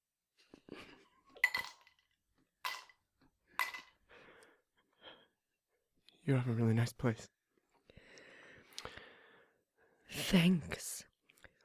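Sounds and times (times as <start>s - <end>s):
ice cubes clinking into a glass: 1.4s - 2.0s, 2.6s - 3.0s
speech: 6.3s - 7.4s, 10.3s - 11.1s.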